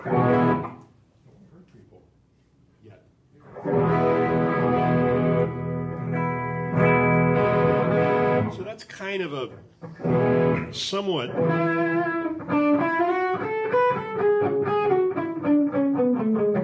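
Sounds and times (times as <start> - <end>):
guitar played through a warm harmonic distortion effect: 0.0 - 0.8, 3.5 - 8.8, 9.8 - 16.6
speech: 9.2 - 12.6.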